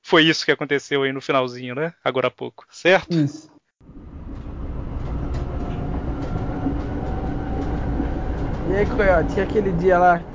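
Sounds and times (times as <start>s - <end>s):
speech: 0.1s - 3.6s, 8.7s - 10.3s
train arriving and rolling along the rails: 3.8s - 10.3s.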